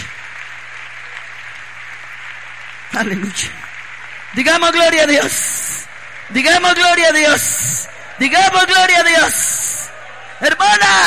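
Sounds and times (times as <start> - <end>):
church congregation applauding: 0.0 - 11.0
speech: 2.9 - 3.6, 4.3 - 5.7, 6.3 - 9.6, 10.4 - 11.0.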